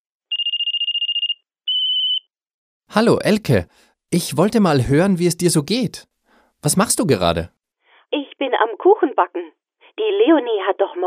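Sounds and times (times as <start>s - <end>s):
telephone ringing with a pulsing electronic trill: 0.3s - 2.3s
speech: 2.9s - 11.0s.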